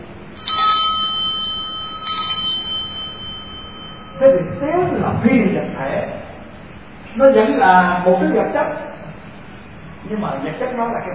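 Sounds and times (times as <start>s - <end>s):
bell ringing: 0.4s - 5.1s
speech: 4.2s - 6.2s, 7.2s - 8.8s, 10.1s - 11.1s.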